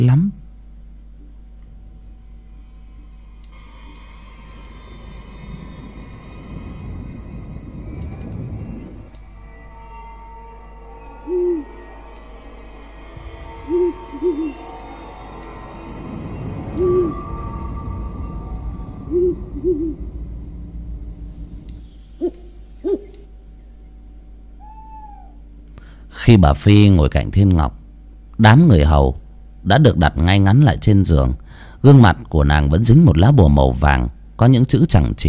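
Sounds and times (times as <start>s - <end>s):
speech: 0.0s - 0.4s, 26.3s - 27.8s, 28.4s - 35.2s
steady low hum: 0.0s - 35.2s
owl hooting at night: 7.5s - 20.4s, 21.2s - 25.4s.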